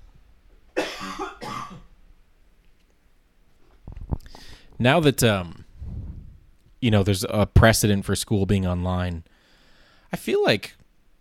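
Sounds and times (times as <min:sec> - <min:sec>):
breathy harsh coughs: 0:00.8 - 0:01.9
speech: 0:04.8 - 0:05.6, 0:06.8 - 0:09.3, 0:10.1 - 0:10.8.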